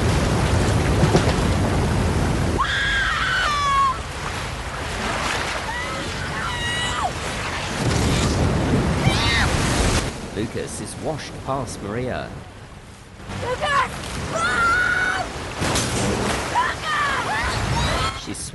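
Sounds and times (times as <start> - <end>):
strong wind howling through palm tree leaves: 0.0 - 11.5, 12.2 - 18.4
sea water surging through a hotel building and across its grounds: 0.0 - 18.5
people screaming and shouting: 2.6 - 4.1, 5.6 - 7.2, 14.3 - 15.3, 16.5 - 18.2
speech: 10.6 - 12.5, 18.3 - 18.5.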